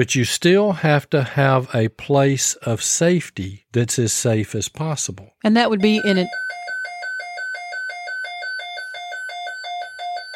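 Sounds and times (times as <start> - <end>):
speech: 0.0 - 6.6
weather radio alert alarm beeping: 5.7 - 10.3.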